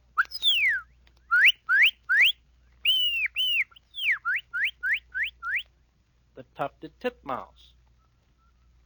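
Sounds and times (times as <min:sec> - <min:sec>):
person whistling an imitation of a cardinal call: 0:00.2 - 0:05.6
speech: 0:06.6 - 0:07.7.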